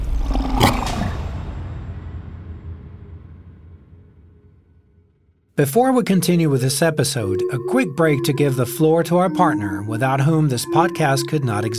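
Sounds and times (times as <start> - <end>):
lion roaring and growling as it attacks: 0.1 - 1.3
speech: 5.6 - 11.7.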